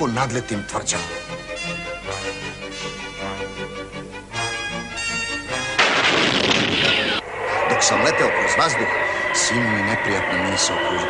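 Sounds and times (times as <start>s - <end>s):
speech: 0.0s - 1.4s, 7.8s - 11.0s
orchestral music: 0.0s - 11.0s
large cannon fired by lighting its fuse: 5.8s - 7.2s.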